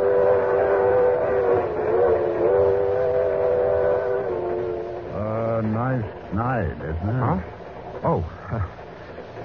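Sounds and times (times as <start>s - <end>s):
train whistle: 0.0s - 5.3s
passenger express train running on rails: 0.0s - 9.4s
speech: 6.7s - 8.7s.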